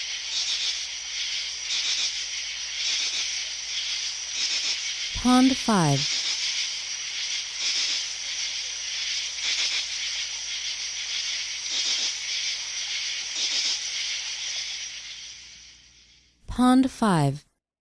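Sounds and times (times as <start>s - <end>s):
crickets chirping at night in a forest: 0.0s - 16.4s
speech: 5.2s - 6.2s, 16.6s - 17.5s.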